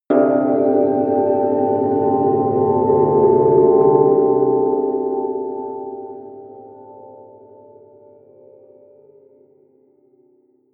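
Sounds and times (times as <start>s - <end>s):
bell pad: 0.1s - 8.1s.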